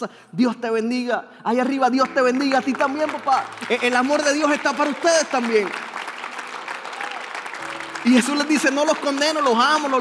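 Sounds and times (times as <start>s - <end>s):
speech: 0.0s - 6.0s, 8.0s - 9.9s
crowd applauding: 2.0s - 9.9s.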